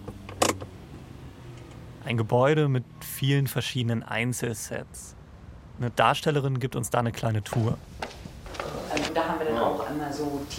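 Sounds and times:
low engine hum inside a moving car: 0.0 - 5.8
speech: 2.0 - 5.2, 5.8 - 8.0, 9.2 - 10.5
rustling: 7.9 - 10.0.

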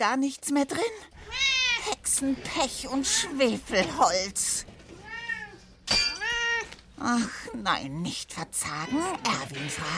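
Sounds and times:
speech: 0.0 - 4.7, 7.0 - 9.9
tomcat meowing: 1.3 - 1.9, 5.0 - 6.8, 8.7 - 9.9.

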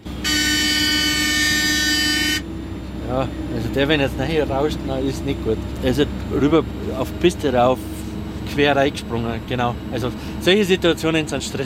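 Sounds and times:
snow groomer horn blast: 0.0 - 2.6
snow groomer engine rumbling: 0.0 - 11.6
speech: 3.2 - 7.9, 8.5 - 11.6.

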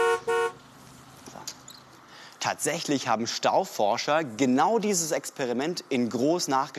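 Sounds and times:
car horn honks in a traffic jam: 0.0 - 0.6
low hum of traffic: 0.0 - 6.7
speech: 2.4 - 6.7.

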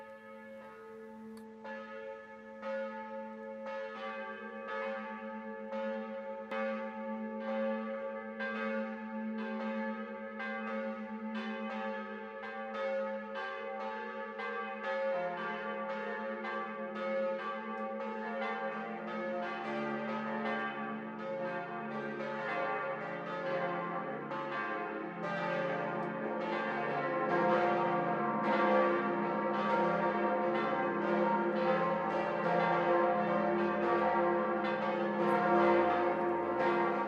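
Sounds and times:
14th-century church bell tolling: 0.0 - 37.0.

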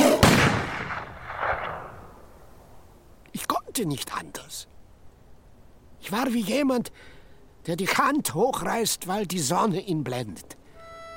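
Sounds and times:
rifle gunshot fired at a leaping tiger: 0.0 - 2.1
speech: 3.8 - 4.8, 6.0 - 10.6.

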